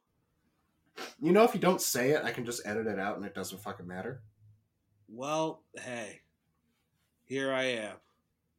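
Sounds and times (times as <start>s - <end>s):
sneeze: 1.0s - 1.2s
speech: 1.2s - 4.3s, 5.1s - 6.2s, 7.3s - 8.1s.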